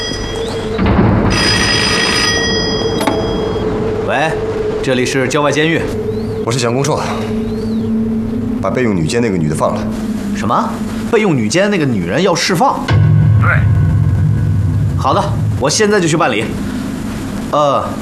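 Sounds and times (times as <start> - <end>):
telephone ringing in warbling bursts: 0.0 - 4.0
brief sustained tone: 0.0 - 18.0
steady droning background: 0.0 - 18.0.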